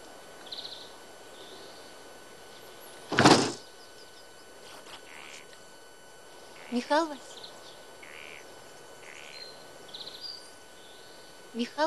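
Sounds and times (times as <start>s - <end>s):
locked door being pushed or pulled, rattling and thudding: 3.1s - 3.6s
speech: 6.7s - 7.4s, 11.6s - 11.8s.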